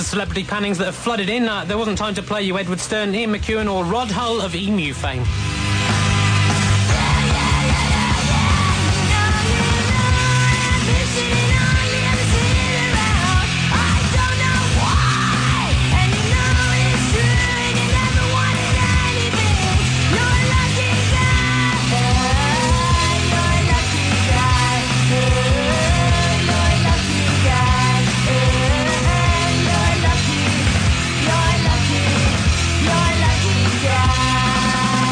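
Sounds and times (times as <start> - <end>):
speech: 0.0 - 5.5
loud dense rock song with heavy drums and distorted instruments: 0.0 - 35.1.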